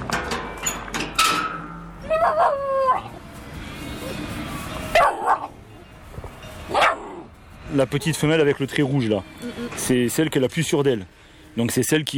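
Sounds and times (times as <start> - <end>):
puppy barking and grumbling in high-pitched yips and whiny growls: 2.0 - 3.1, 4.9 - 5.6, 6.7 - 7.3
speech: 2.2 - 2.7, 7.8 - 12.1.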